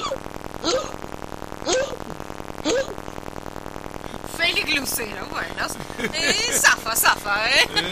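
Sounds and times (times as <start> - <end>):
throaty cough-like hiccups: 0.0 - 3.1
steady low hum: 0.0 - 7.9
speech: 4.8 - 7.9
laughter: 5.6 - 7.9.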